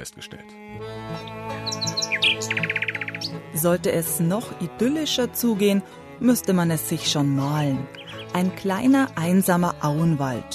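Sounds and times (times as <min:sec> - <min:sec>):
speech: 0:00.0 - 0:10.5
nightingale singing in a small floodplain woodland in a nature reserve: 0:01.0 - 0:04.0, 0:07.8 - 0:09.2.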